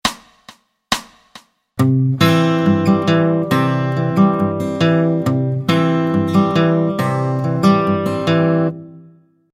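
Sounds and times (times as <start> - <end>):
Travis-picked guitar: 1.8 - 9.4.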